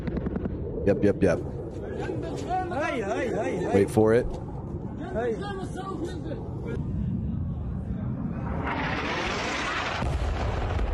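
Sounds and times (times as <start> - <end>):
aircraft overhead: 0.5 - 10.9
speech: 0.8 - 4.4, 5.2 - 6.8
airstrike explosion rumbling roar: 6.4 - 10.9.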